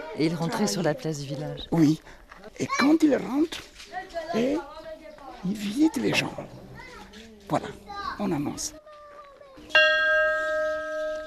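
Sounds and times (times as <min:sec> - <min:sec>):
speech: 0:00.2 - 0:04.8, 0:05.4 - 0:08.8
bell struck once, bright metallic tone: 0:09.7 - 0:11.2.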